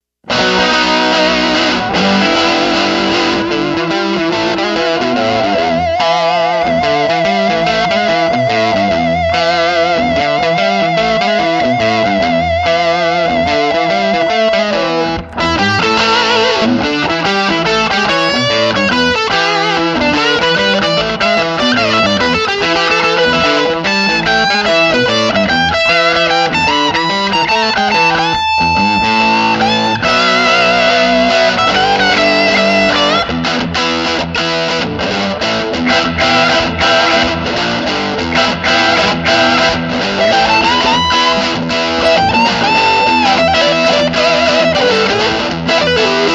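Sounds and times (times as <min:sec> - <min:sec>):
electric guitar lead on bridge then neck pickup: 0:00.2 - 0:46.3.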